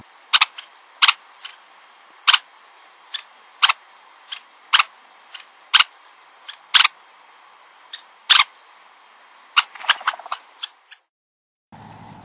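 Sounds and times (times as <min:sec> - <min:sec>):
red-necked phalarope kip calls: 0:00.0 - 0:01.6, 0:02.2 - 0:02.5, 0:03.1 - 0:07.0, 0:07.9 - 0:08.6, 0:09.6 - 0:11.0
steady background hiss: 0:00.0 - 0:11.1.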